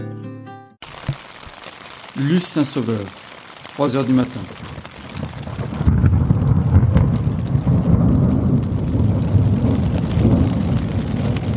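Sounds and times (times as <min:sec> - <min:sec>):
heavy rain drumming on a tent: 0:00.8 - 0:11.5
speech: 0:02.2 - 0:03.2, 0:03.8 - 0:05.0
deep rolling thunder: 0:04.2 - 0:11.5.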